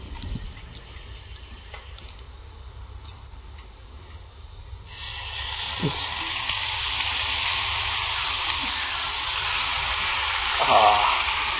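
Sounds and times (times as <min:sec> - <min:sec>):
vegan ham sizzling in a hot pan with sauce: 0:04.9 - 0:11.5.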